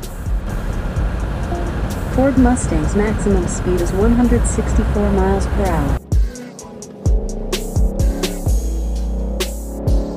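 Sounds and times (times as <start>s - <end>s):
car air conditioning blasting at full: 0.0s - 6.0s
road noise inside a car moving on a highway: 0.0s - 10.1s
speech: 2.2s - 6.0s.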